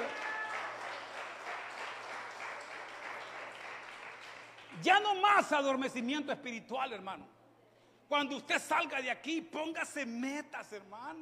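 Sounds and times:
church audience applauding: 0.0 - 4.8
speech: 4.8 - 7.4, 8.1 - 11.2.

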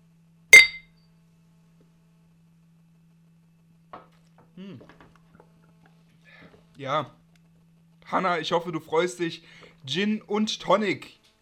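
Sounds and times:
glasses clinking in a toast: 0.6 - 0.8
speech: 6.8 - 7.2, 8.1 - 11.2.

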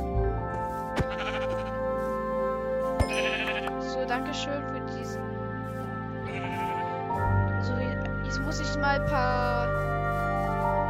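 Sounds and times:
video game music: 0.0 - 10.8
video game sheep bleating: 1.0 - 2.1, 3.1 - 3.8, 6.2 - 7.0
speech: 4.0 - 5.3, 8.5 - 10.2.

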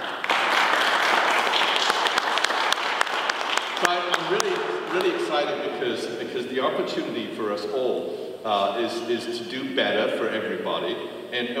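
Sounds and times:
audience applause: 0.0 - 5.6
speech: 3.8 - 11.5.

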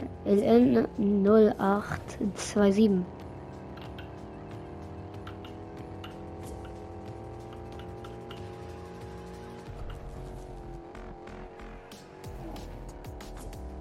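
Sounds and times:
Lamborghini Huracan sports car engine droning in a video game: 0.0 - 13.7
sharp clicks: 3.7 - 4.3, 5.0 - 8.7.

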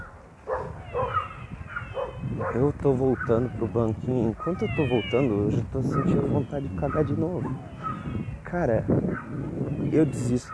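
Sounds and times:
dog barking short yappy barks: 0.4 - 3.4, 5.9 - 6.2, 6.8 - 8.0, 9.1 - 9.4
speech: 2.5 - 7.7, 8.5 - 10.5.

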